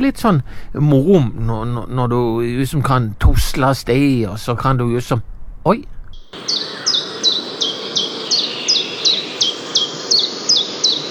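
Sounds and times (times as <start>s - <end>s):
speech: 0.0s - 6.6s
common chiffchaff singing: 6.2s - 11.0s.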